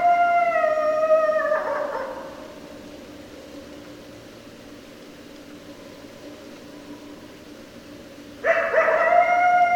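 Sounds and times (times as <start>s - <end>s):
several coyotes howling: 0.0s - 2.5s, 8.4s - 9.7s.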